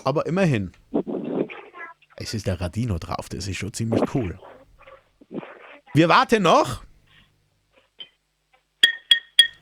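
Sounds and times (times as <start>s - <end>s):
speech: 0.0s - 0.8s, 2.2s - 4.5s, 6.0s - 6.9s
spoon tapping a ceramic mug: 8.8s - 9.6s.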